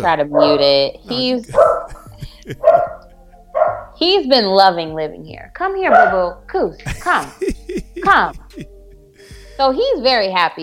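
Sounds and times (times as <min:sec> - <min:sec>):
speech: 0:00.0 - 0:01.7, 0:02.4 - 0:03.0, 0:04.0 - 0:08.7, 0:09.6 - 0:10.6
laughter: 0:01.1 - 0:03.0, 0:06.9 - 0:08.7
dog barking: 0:01.5 - 0:04.0, 0:05.9 - 0:06.3.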